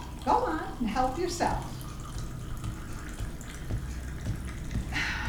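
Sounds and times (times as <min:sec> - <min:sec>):
water running from a tap: 0:00.0 - 0:05.2
speech: 0:00.8 - 0:01.8.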